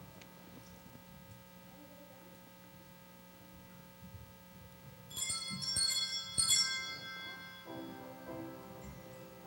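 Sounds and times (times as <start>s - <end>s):
bells ringing: 5.1s - 9.3s.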